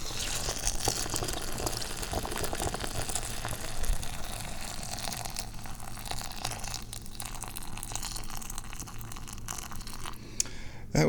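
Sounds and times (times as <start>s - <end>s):
water pouring and spilling onto counter: 0.0s - 10.2s.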